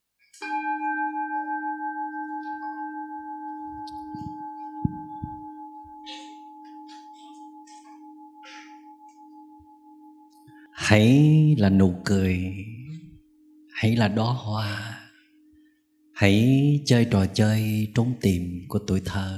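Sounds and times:
single bell struck and ringing: 0:00.4 - 0:10.5
speech: 0:10.9 - 0:12.8, 0:13.8 - 0:14.9, 0:16.2 - 0:19.3.

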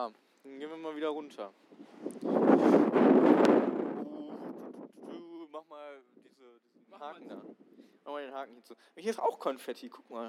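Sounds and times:
speech: 0:00.0 - 0:03.2, 0:05.6 - 0:10.2
gusty wind buffeting the microphone: 0:01.7 - 0:05.4, 0:07.0 - 0:07.9.

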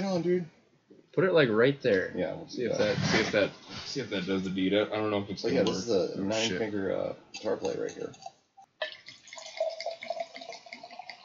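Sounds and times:
speech: 0:00.2 - 0:00.6, 0:01.2 - 0:08.4
red Merlot wine pouring into a glass: 0:07.7 - 0:11.2.

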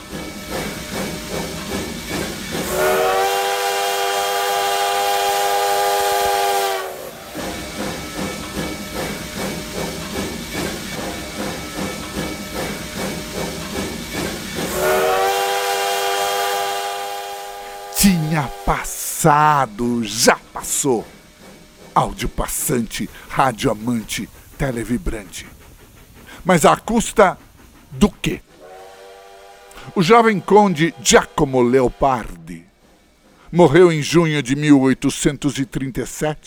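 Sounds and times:
steam train chugging past with rhythmic puffing: 0:00.0 - 0:36.4
hissing steam from a steam train: 0:00.4 - 0:32.4
steam train whistle blasts: 0:02.5 - 0:08.3, 0:14.5 - 0:21.4, 0:28.5 - 0:32.1
speech: 0:19.2 - 0:21.2, 0:22.0 - 0:25.6, 0:26.4 - 0:28.5, 0:29.9 - 0:32.7, 0:33.5 - 0:36.4.

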